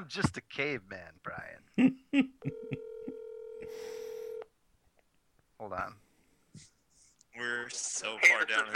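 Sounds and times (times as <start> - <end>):
speech: 0.0 - 2.8, 5.6 - 6.0, 7.4 - 8.7
steady electronic phone call tone: 2.5 - 4.5.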